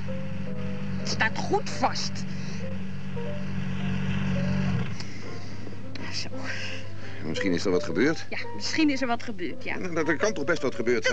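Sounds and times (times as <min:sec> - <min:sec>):
vehicle engine shutting off: 0:00.0 - 0:08.2
vehicle engine idling: 0:00.0 - 0:11.1
speech: 0:01.1 - 0:02.3, 0:06.1 - 0:11.1.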